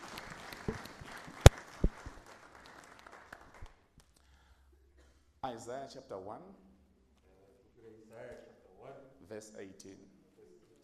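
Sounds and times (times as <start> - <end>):
crowd applauding: 0.0 - 3.8
speech: 5.6 - 6.7, 9.3 - 10.2.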